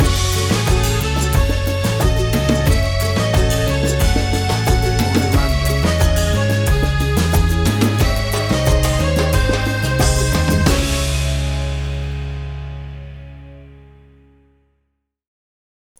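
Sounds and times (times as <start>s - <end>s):
calypso reggae fusion groove: 0.0s - 13.1s.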